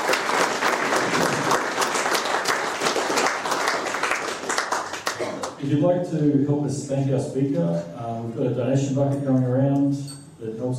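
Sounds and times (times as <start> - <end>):
audience applause: 0.0 - 5.6
speech: 5.7 - 10.7.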